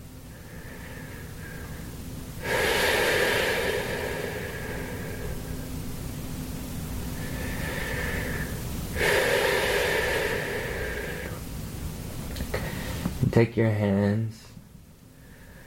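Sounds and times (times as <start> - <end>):
deep deliberate breathing during a guided breathing exercise: 0.0 - 6.0, 7.0 - 11.6, 12.5 - 13.2, 15.1 - 15.6
speech: 13.4 - 14.4.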